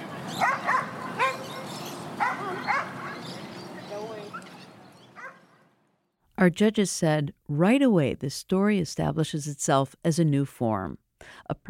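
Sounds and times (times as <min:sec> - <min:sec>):
open outdoor hubbub at a dog park: 0:00.0 - 0:05.8
dog barking at a dog park: 0:00.3 - 0:03.4, 0:05.2 - 0:05.5
dog yipping at a dog park: 0:00.3 - 0:03.4, 0:04.2 - 0:05.5
speech: 0:06.4 - 0:11.6.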